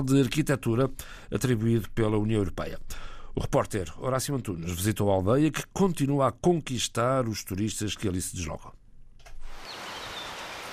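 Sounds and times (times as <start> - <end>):
speech: 0.0 - 8.8
faint high bird chirps in a mountain village: 9.6 - 10.7
waterfall rushing in a mountain village: 9.6 - 10.7.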